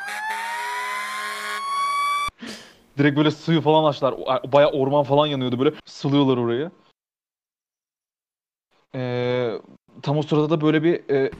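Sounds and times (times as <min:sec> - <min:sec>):
fire engine siren wailing in a video game: 0:00.0 - 0:02.3
speech: 0:03.0 - 0:06.8, 0:10.0 - 0:11.3.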